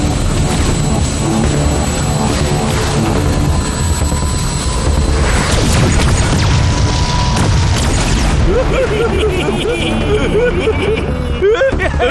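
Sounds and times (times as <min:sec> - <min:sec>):
roaring aircraft engines: 0:00.0 - 0:12.0
rumbling explosions and booms in battle: 0:00.0 - 0:12.0
laughter: 0:08.4 - 0:12.0.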